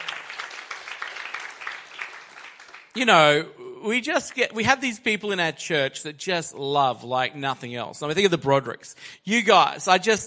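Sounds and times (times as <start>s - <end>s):
church congregation clapping: 0.0s - 3.0s
speech: 3.0s - 10.2s.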